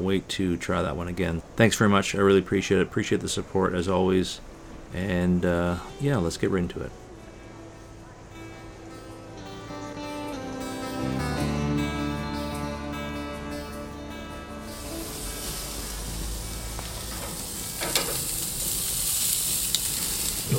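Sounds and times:
speech: 0.0 - 7.0
steady tonal music: 6.9 - 18.9
food sizzling in a frying pan: 14.6 - 20.5.

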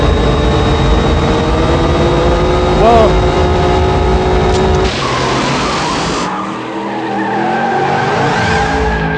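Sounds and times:
Mustang engine revving: 0.0 - 9.1
car tires squealing launching in launch mode: 4.6 - 9.1.

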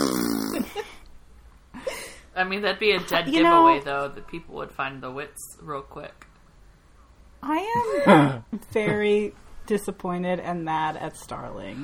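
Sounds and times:
voice imitating a fart: 0.0 - 0.8
speech: 2.4 - 6.3, 7.4 - 11.8.

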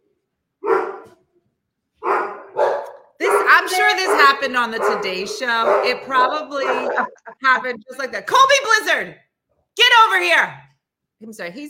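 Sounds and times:
dogs barking: 0.6 - 1.2, 2.0 - 7.4
speech: 3.6 - 9.2, 9.8 - 10.6, 11.2 - 11.6.

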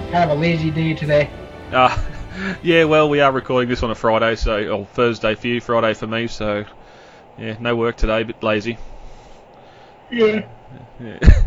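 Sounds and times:
speech: 0.1 - 6.8, 7.4 - 8.9, 10.1 - 11.4
breathy yawn: 2.0 - 2.6.

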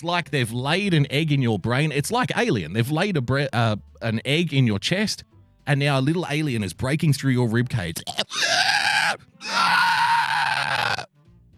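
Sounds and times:
speech: 0.0 - 9.8
person screaming: 8.1 - 11.1.

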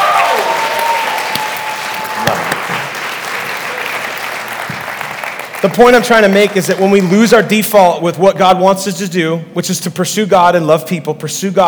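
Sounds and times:
audience applause: 0.0 - 7.2
speech: 5.6 - 11.6.

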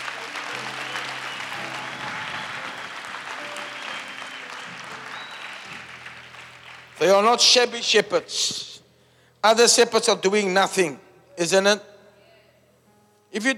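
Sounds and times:
large crowd applauding: 0.0 - 8.0
speech: 7.0 - 8.7, 9.4 - 11.9, 13.3 - 13.5.

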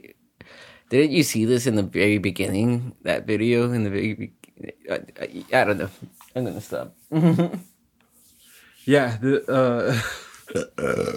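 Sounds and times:
speech: 0.9 - 7.7, 8.8 - 11.1
person burping: 9.8 - 11.1.

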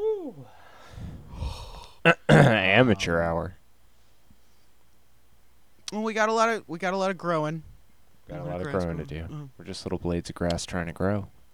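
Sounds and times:
person murmuring: 0.0 - 0.5, 1.3 - 3.3
breaths blowing into the microphone: 0.4 - 2.0
speech: 2.0 - 3.6, 5.9 - 7.7, 8.3 - 11.4.

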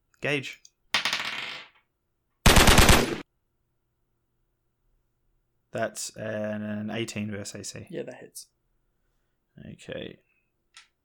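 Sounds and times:
speech: 0.2 - 0.6, 5.7 - 8.6, 9.6 - 10.9
automatic gunfire: 2.5 - 3.2.

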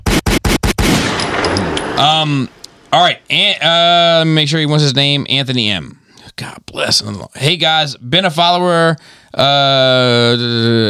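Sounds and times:
gunshot sound effects: 0.0 - 3.5
speech: 2.0 - 10.8.

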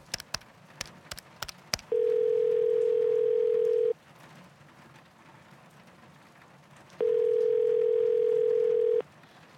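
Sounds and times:
steady landline telephone dial tone: 1.9 - 3.9, 7.0 - 9.0.

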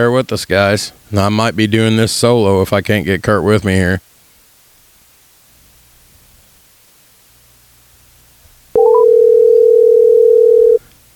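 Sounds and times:
speech: 0.0 - 4.1
phone ringing tone on an outgoing call: 8.8 - 10.8.

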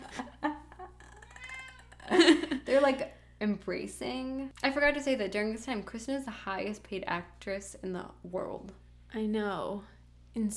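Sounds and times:
steady hum: 0.0 - 10.5
cat meowing: 1.1 - 2.0
speech: 2.3 - 10.5.

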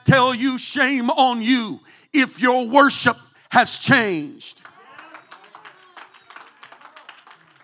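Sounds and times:
speech: 0.1 - 4.7
scattered hand claps from a small group in a roomy space: 4.6 - 7.6.

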